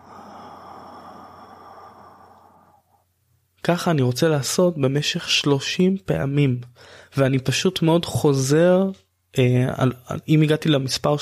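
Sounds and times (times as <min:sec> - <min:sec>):
slow breathy exhale during a counted breathing exercise: 0:00.0 - 0:03.1
speech: 0:03.7 - 0:11.2.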